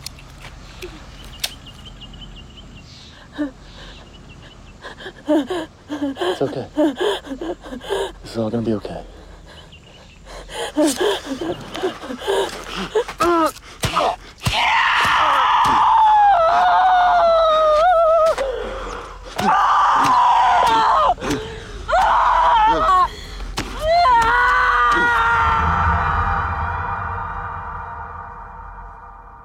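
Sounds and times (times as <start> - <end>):
speech: 3.4 - 3.7, 5.3 - 9.2, 10.8 - 13.6
woman screaming and wailing in anguish: 10.6 - 18.7, 19.4 - 29.2.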